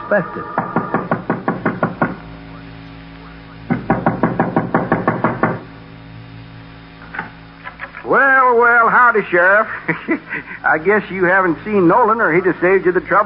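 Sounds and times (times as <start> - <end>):
speech: 0.1 - 0.7, 8.1 - 13.2
loud insistent knocking on a door: 0.6 - 2.2, 3.7 - 5.6
laughter: 9.6 - 10.9.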